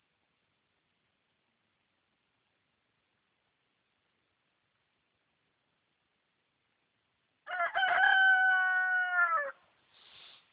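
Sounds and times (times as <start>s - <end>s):
rooster crowing: 7.5s - 9.6s
soft rustle: 9.6s - 10.5s.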